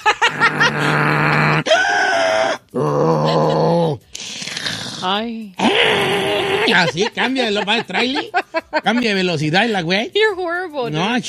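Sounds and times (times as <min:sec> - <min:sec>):
laughter: 0:00.0 - 0:02.0, 0:02.8 - 0:04.0, 0:06.0 - 0:09.8
person imitating piglet-like snoring grunts: 0:00.3 - 0:01.7, 0:02.7 - 0:06.9
speech: 0:06.7 - 0:11.2.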